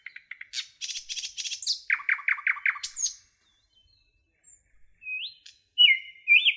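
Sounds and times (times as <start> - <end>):
nightingale singing: 0.0 - 6.5.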